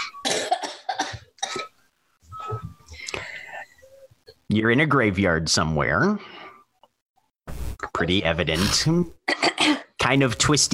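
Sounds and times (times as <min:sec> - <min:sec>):
person coughing: 0:00.0 - 0:01.7, 0:09.3 - 0:10.0
speech: 0:04.5 - 0:06.4, 0:08.0 - 0:09.2, 0:10.0 - 0:10.7.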